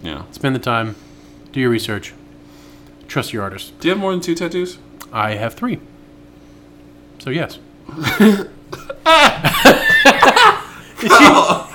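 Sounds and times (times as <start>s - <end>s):
speech: 0.2s - 2.2s, 3.1s - 5.9s, 7.2s - 9.9s
person laughing: 7.9s - 11.7s.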